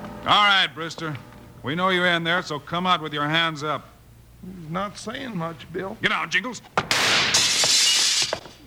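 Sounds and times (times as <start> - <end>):
speech: 0.3 - 3.9, 4.4 - 6.9
glass window shattering: 6.8 - 8.5
falling glass shards tinkling: 7.3 - 8.4.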